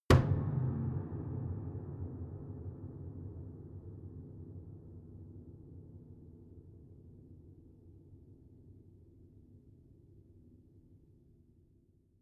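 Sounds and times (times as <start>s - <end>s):
piano body hit: 0.1s - 2.8s.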